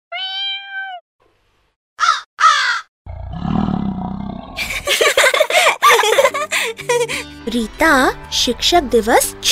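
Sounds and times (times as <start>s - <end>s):
person imitating a cat-like meow: 0.1s - 1.0s
person imitating crow caws: 2.0s - 2.9s
person imitating a deep growling lion roar: 3.1s - 4.7s
laughter: 4.6s - 7.3s
speech: 7.5s - 9.5s.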